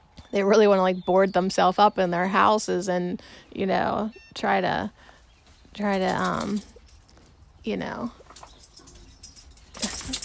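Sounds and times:
speech: 0.3s - 5.1s, 5.8s - 6.7s, 7.6s - 8.2s
dogs scuffling and yelping: 5.5s - 7.5s, 8.2s - 10.2s.

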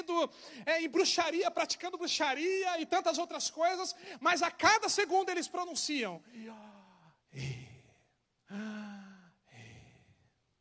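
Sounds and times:
speech: 0.1s - 6.7s, 7.3s - 7.6s, 8.5s - 8.7s
slow deliberate breathing in and out: 8.5s - 10.3s.

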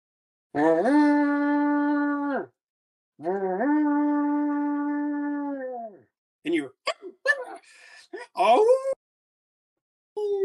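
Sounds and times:
speech: 0.5s - 1.2s, 8.4s - 8.8s
person imitating a wolf howl: 0.6s - 2.5s, 3.2s - 6.0s.

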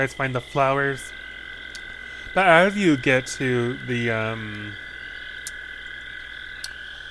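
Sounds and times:
speech: 0.0s - 1.2s, 2.4s - 4.8s
chorus of frogs croaking and trilling: 0.0s - 7.0s
sharp clicks: 1.7s - 1.9s, 5.4s - 6.8s.

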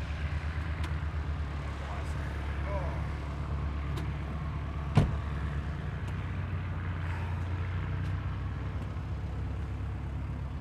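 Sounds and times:
light aircraft engine droning at an airfield: 0.0s - 10.5s.

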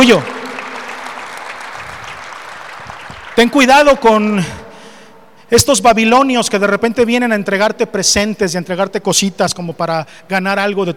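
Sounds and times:
speech: 0.0s - 0.4s, 3.4s - 4.6s, 5.5s - 10.9s
congregation applauding during a church sermon: 0.0s - 4.5s.

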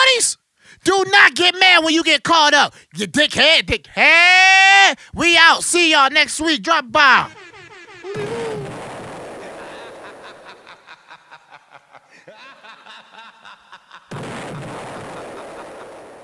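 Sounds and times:
speech: 0.2s - 7.5s, 8.1s - 8.5s
laughter: 6.6s - 14.2s
bomb explosion sound effects: 8.1s - 10.5s, 14.1s - 16.2s.

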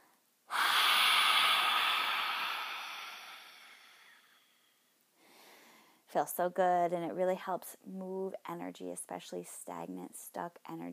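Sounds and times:
forceful yoga lion's breath exhale with tongue out: 0.5s - 4.6s
speech: 6.1s - 10.9s.

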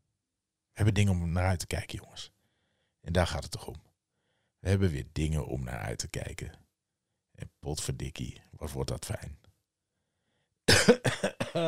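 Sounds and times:
speech: 0.8s - 2.4s, 3.0s - 3.9s, 4.6s - 6.6s, 7.4s - 9.4s, 10.9s - 11.6s
rough coughing trailing into a throaty rasp: 10.7s - 11.6s.

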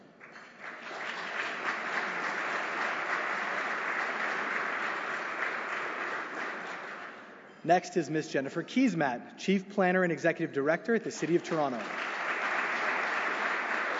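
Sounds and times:
large audience applause: 0.5s - 7.3s, 11.2s - 13.9s
speech: 7.6s - 12.1s.

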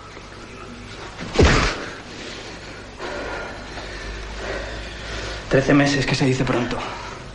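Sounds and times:
low steady hum: 0.0s - 7.3s
hard punch to the face: 1.4s - 1.8s
speech: 5.5s - 7.0s.

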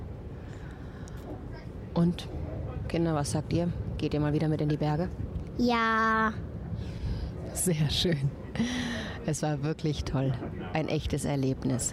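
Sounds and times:
low rumble inside a moving train carriage: 0.0s - 11.9s
speech: 1.3s - 7.0s, 7.6s - 11.9s.

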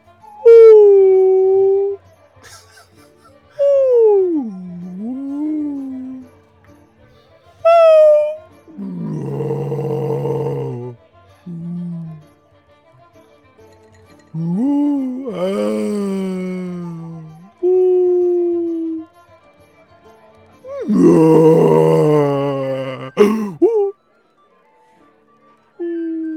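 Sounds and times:
human voice imitating a whale call: 0.4s - 2.0s, 3.6s - 6.3s, 7.7s - 12.2s, 14.4s - 19.1s, 20.7s - 23.9s, 25.8s - 26.3s
laughter: 2.4s - 4.5s.

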